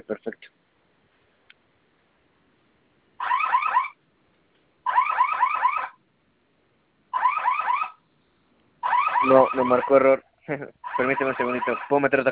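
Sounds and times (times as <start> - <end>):
security alarm panel electronic siren during test: 3.2 - 4.0, 4.8 - 6.0, 7.1 - 8.0, 8.8 - 10.0, 10.8 - 12.1
speech: 9.3 - 12.3.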